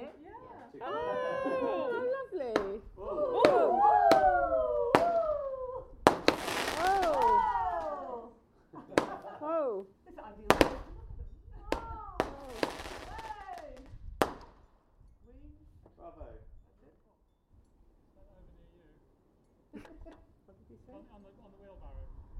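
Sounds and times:
laughter: 0:00.9 - 0:02.3, 0:08.6 - 0:09.7, 0:19.7 - 0:21.4
crowd of voices exclaiming and cooing: 0:03.0 - 0:08.4
wheelbarrow fireworks exploding outdoors over a pond: 0:04.9 - 0:05.3, 0:06.0 - 0:08.0, 0:10.5 - 0:11.0, 0:11.7 - 0:14.7.

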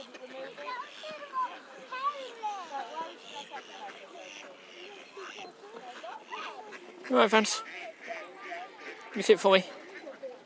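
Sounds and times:
ducks quacking in spring: 0:00.0 - 0:10.4
steady murmur of noise possibly with voices: 0:00.0 - 0:10.4
speech: 0:07.1 - 0:07.7, 0:09.2 - 0:09.8.

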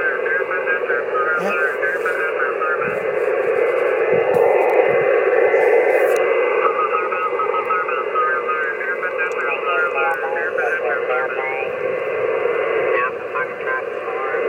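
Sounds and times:
narrowband static-laden radio transmission: 0:00.0 - 0:14.4.

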